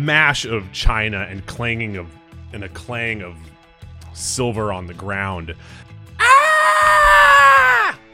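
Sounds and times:
speech: 0.0s - 3.6s, 4.2s - 5.8s
person shrieking in a kitchen: 6.2s - 8.0s.

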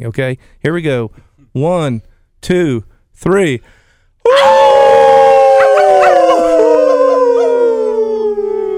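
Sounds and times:
speech: 0.0s - 4.6s
several people howling like wolves: 4.3s - 8.7s.

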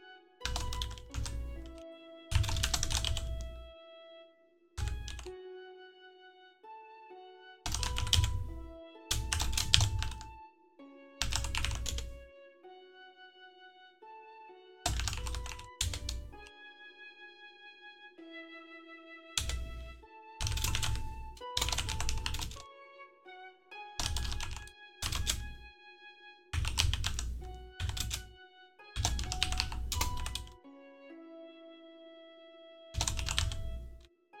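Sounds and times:
rapid computer keyboard typing: 0.4s - 3.7s, 4.8s - 5.3s, 7.6s - 10.4s, 11.2s - 12.2s, 14.8s - 16.5s, 19.4s - 22.6s, 24.0s - 25.6s, 26.5s - 28.3s, 29.0s - 30.6s, 32.9s - 34.1s.

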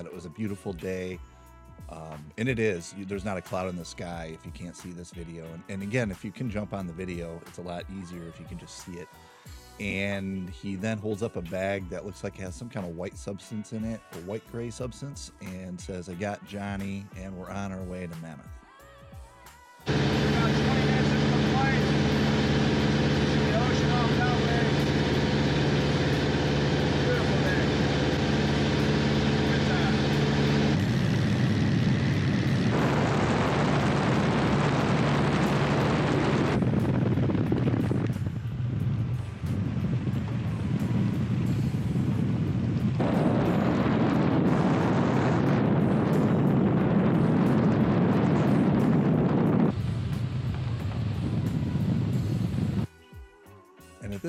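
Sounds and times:
speech: 0.0s - 18.6s
rushing wind noise: 19.9s - 52.9s
small propeller plane engine droning in flight: 19.9s - 52.9s.

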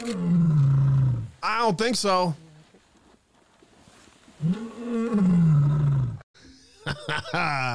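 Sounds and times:
lioness roaring: 0.0s - 1.3s, 4.4s - 6.2s
speech: 1.4s - 2.4s, 7.2s - 7.7s.

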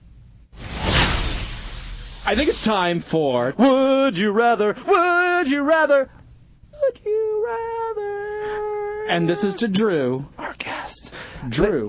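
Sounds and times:
broad noisy swoosh transition effect: 0.6s - 2.6s
speech: 2.3s - 6.2s, 6.8s - 8.2s, 9.1s - 11.8s.

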